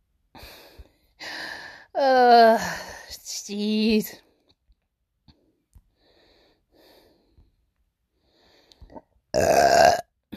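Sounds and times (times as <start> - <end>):
speech: 3.5 - 4.2
loud drawn-out burp: 9.3 - 10.3.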